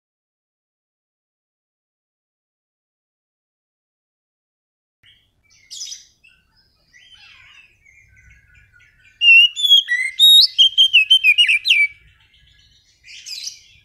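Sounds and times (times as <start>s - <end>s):
Oriental magpie-robin lure song: 5.0s - 13.8s.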